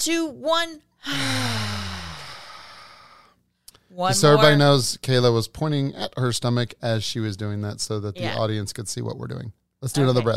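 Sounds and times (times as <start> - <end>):
speech: 0.0 - 1.5, 3.9 - 10.3
deep breath released from the stomach during a breathing exercise: 1.1 - 3.4.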